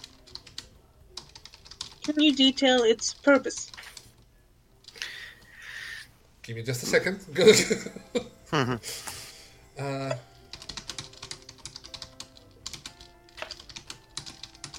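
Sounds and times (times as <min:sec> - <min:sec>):
rapid typing on a computer keyboard: 0:00.0 - 0:04.1, 0:10.4 - 0:14.7
speech: 0:02.1 - 0:03.8, 0:06.5 - 0:09.1, 0:09.8 - 0:10.3.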